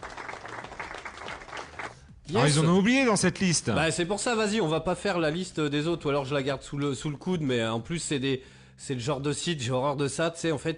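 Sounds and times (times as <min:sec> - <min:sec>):
crowd applause: 0:00.0 - 0:02.1
speech: 0:02.3 - 0:10.7.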